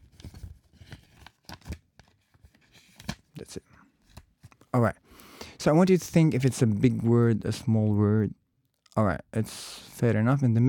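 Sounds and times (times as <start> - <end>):
fresh sheet of paper rustling and tearing: 0.0 - 3.2
fresh sheet of paper crinkling: 0.0 - 4.7
speech: 3.5 - 3.7, 4.7 - 5.0, 5.6 - 8.4, 9.0 - 10.6.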